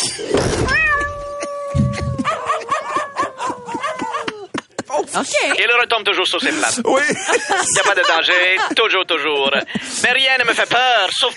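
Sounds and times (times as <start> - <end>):
cat yowling as it is launched from a catapult: 0.7 - 4.4
laughter: 1.2 - 11.3
speech: 5.2 - 11.3.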